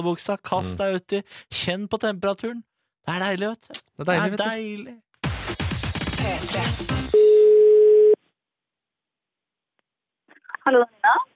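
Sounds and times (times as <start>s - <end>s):
speech: 0.0s - 5.6s, 6.2s - 7.3s, 10.6s - 11.3s
telephone ringing tone: 7.2s - 8.2s.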